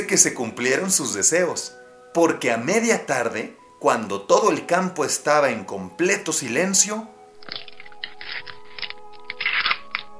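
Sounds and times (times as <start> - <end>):
speech: 0.0 - 7.6
eggshells cracking as ducklings hatch in the countryside: 7.4 - 10.1.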